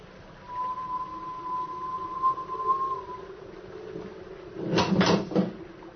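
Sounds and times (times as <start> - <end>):
thin whistle: 0.4 - 4.2.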